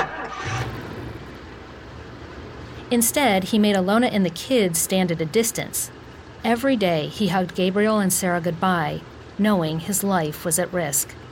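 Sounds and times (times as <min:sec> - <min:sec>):
car engine cranking and starting: 0:00.0 - 0:05.0
speech: 0:02.9 - 0:11.2.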